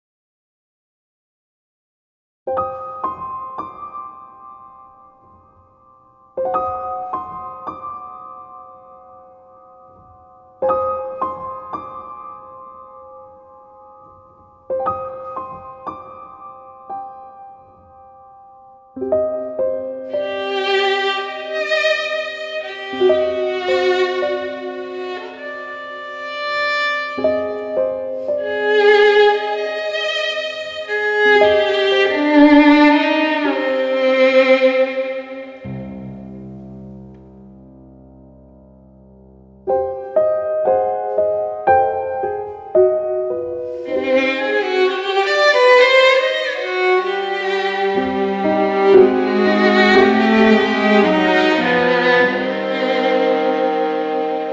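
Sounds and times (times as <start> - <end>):
piano: 2.5 - 54.5.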